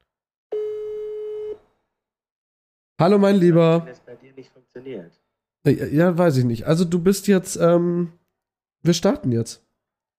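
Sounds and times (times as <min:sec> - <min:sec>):
telephone call tone on an outgoing call from a mobile phone: 0:00.5 - 0:01.6
speech: 0:03.0 - 0:08.2, 0:08.8 - 0:09.7.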